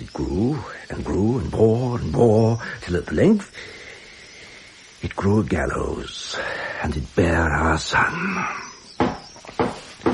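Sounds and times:
speech: 0.2 - 3.8, 5.0 - 8.7
firm knocking on a door: 9.0 - 10.1.

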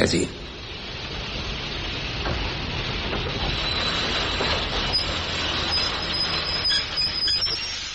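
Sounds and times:
train rolling past: 0.0 - 7.9
faint clattering: 0.9 - 6.6
high metallic squeals of train: 3.2 - 7.9.

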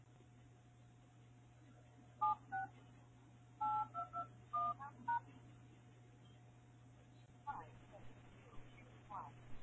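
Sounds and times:
steady low electrical hum: 0.0 - 9.6
phone keypad touch-tone beeps: 3.6 - 4.8.

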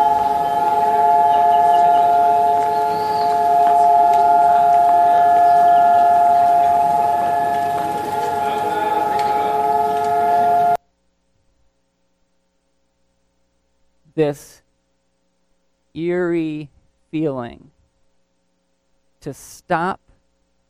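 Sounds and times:
air raid siren wailing at a steady pitch: 0.0 - 10.8
faint outdoor noise: 0.0 - 20.6
speech: 14.2 - 14.6, 16.0 - 17.7, 19.2 - 20.0.

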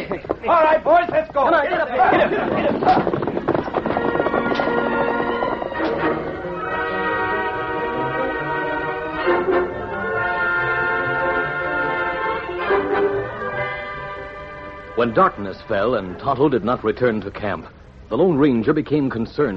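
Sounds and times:
horses riding off with hoofbeats and clip-clops: 0.0 - 7.8
speech: 0.1 - 3.2, 15.0 - 19.5
loud sustained musical score: 3.8 - 16.7.

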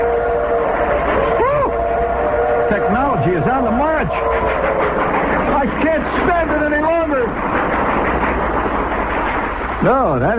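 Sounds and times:
sustained whistle-like tones: 0.0 - 6.3
passing train rumbling: 0.0 - 10.3
speech: 2.8 - 4.5, 9.8 - 10.3.

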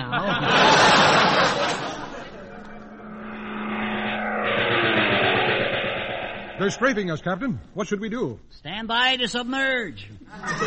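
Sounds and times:
laughter: 0.0 - 2.5, 10.3 - 10.6
enemy airplane roaring past low overhead: 0.5 - 7.3
speech: 6.6 - 10.6.

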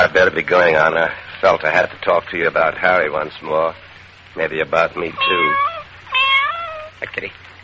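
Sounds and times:
speech: 0.1 - 5.7, 7.0 - 7.4
cat meowing: 5.0 - 7.0.

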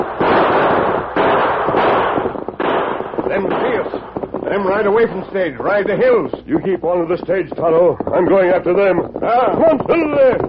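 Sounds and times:
gunshots during an outlaw stagecoach holdup in a valley: 0.0 - 6.4
speech: 4.6 - 10.4.

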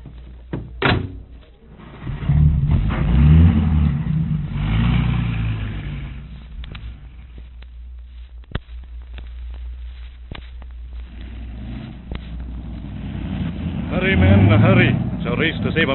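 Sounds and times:
car door thudding shut: 0.5 - 1.2
car engine revving and driving off: 1.6 - 7.4, 10.9 - 15.9
speech: 14.5 - 15.9.

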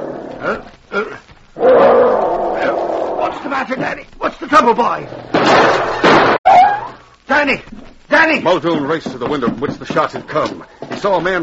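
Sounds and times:
speech: 0.4 - 1.3, 3.6 - 5.9, 7.4 - 11.4
dog growling: 1.6 - 3.5.

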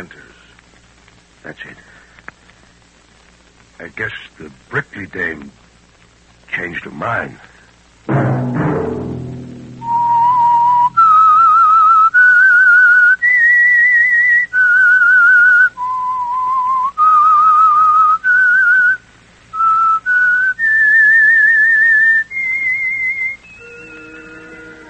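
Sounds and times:
speech: 1.4 - 2.0, 3.8 - 5.6, 6.5 - 9.1
loud clear solo whistle carrying a radio program theme melody: 9.8 - 19.0, 19.6 - 24.8.

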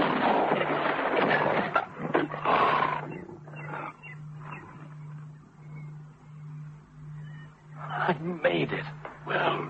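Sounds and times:
lion roaring as it leaps: 0.0 - 4.9
speech: 8.4 - 9.6.

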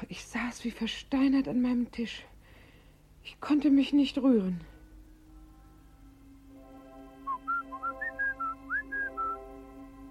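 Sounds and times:
speech: 0.0 - 2.3, 3.2 - 4.7
faint steady hum: 0.0 - 10.1
person whistling a short clear melody: 7.3 - 9.4.

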